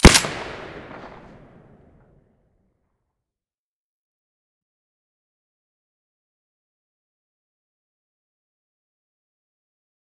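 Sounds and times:
Saiga weapon shots with silencer: 0:00.0 - 0:02.0.

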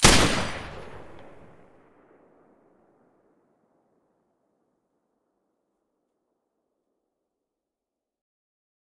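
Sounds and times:
machine gun firing with silencer: 0:00.0 - 0:01.6.

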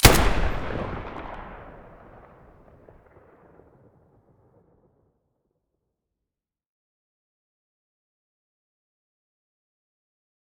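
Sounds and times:
Galil rifle muzzle blast: 0:00.0 - 0:02.1.

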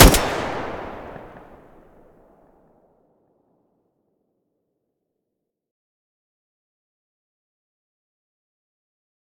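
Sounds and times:
Groza rifle muzzle gunshots: 0:00.0 - 0:01.8.

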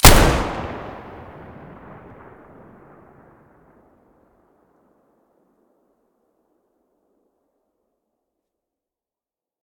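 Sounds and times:
M590 muzzle blast: 0:00.0 - 0:01.4.

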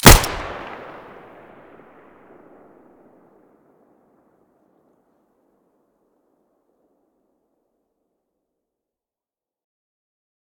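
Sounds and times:
Five-seven pistol muzzle blast in stereo: 0:00.0 - 0:01.0.

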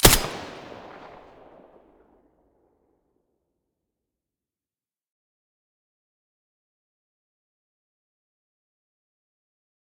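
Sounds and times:
M4A1 rifle with silencer firing: 0:00.0 - 0:01.7.

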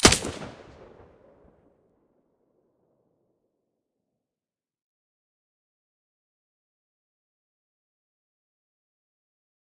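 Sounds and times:
AUG rifle firing with silencer: 0:00.0 - 0:01.1.

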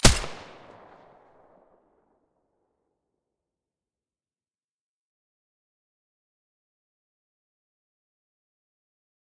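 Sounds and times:
silenced weapon shot: 0:00.0 - 0:01.2.

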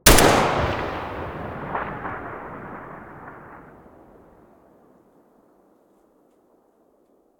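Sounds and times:
rifle muzzle gunshot: 0:00.0 - 0:04.2.

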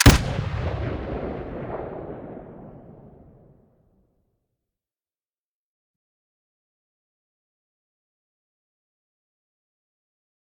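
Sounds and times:
GP-25 grenade launcher shot: 0:00.0 - 0:03.5.

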